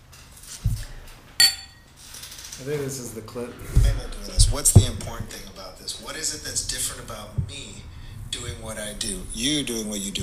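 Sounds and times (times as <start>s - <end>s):
dull low thud: 0.6s - 1.1s, 3.6s - 10.2s
glass clink in a toast: 1.4s - 1.9s
speech: 2.6s - 10.2s.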